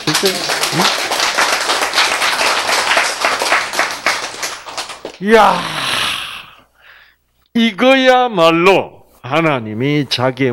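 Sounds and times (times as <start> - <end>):
crowd clapping: 0.0 - 5.2
speech: 0.2 - 1.0, 5.2 - 5.7, 7.6 - 10.5.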